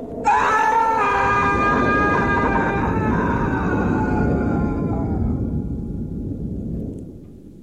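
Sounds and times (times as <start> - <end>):
deep rumbling bed: 0.0 - 7.6
monstrous roar of a dying demon falling to the ground: 0.1 - 5.9.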